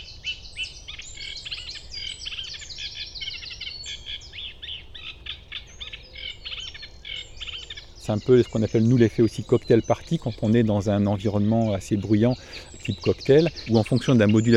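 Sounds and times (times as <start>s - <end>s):
bird singing at dawn before sunrise: 0.0s - 14.5s
speech: 8.1s - 14.5s.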